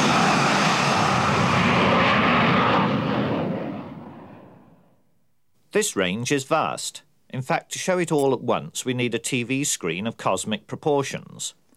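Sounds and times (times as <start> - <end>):
jet aircraft engine roaring while taking off: 0.0 - 4.9
speech: 5.7 - 11.6.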